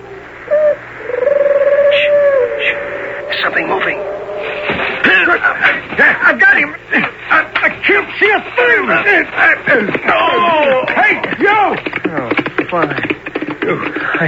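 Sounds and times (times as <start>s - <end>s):
human voice mimicking owl-like hoots as signals: 0.0s - 5.5s
fainter answering owl-like calls: 1.4s - 14.2s
speech: 5.3s - 14.2s.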